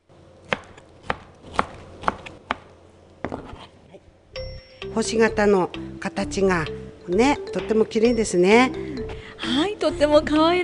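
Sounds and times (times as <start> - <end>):
knife chopping boiled okra on a cutting board: 0.5 - 2.7
speech: 5.0 - 8.8, 9.4 - 10.6.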